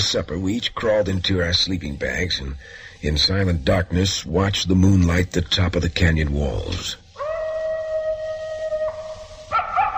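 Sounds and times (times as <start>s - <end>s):
speech: 0.1s - 7.0s
coyote howling at night in a canyon: 7.2s - 9.9s.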